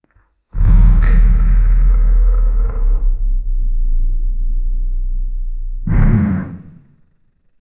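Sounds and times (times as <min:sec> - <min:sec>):
heavy stony monster walking menacingly: 0:00.6 - 0:06.0.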